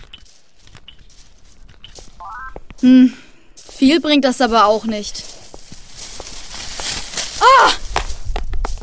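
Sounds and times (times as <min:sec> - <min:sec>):
speech: 0:02.8 - 0:03.2, 0:03.8 - 0:05.3
short vocal cry: 0:07.4 - 0:07.8.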